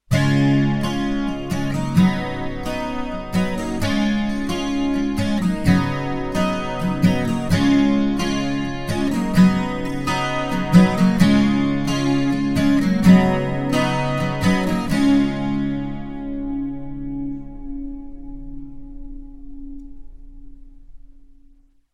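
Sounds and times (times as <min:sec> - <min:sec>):
wet acoustic guitar: 0:00.0 - 0:21.6.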